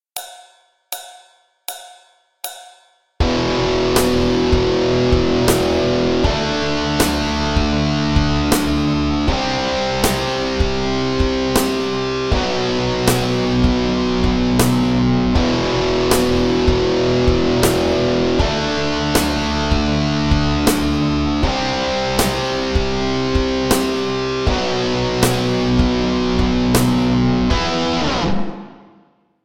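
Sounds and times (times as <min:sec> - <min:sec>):
backing track music for playing along: 0:03.2 - 0:29.0.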